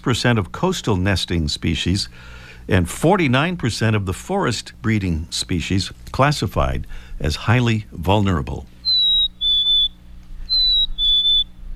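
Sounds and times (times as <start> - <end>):
speech: 0.0 - 8.7
faint low hum: 0.0 - 11.7
Black-capped Chickadee singing a whistled two-note spring song: 8.8 - 11.6.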